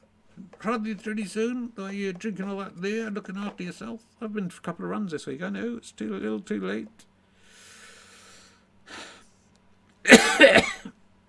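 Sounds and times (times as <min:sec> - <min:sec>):
speech: 0:00.6 - 0:07.1
short breathy intake: 0:07.3 - 0:09.3
man coughing harshly: 0:10.1 - 0:11.0.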